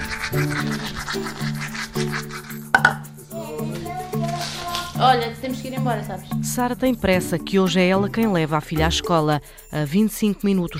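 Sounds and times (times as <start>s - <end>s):
girl brushing teeth with bubblegum-flavoured toothpaste: 0.0s - 6.8s
speech: 0.3s - 3.0s, 5.0s - 10.7s.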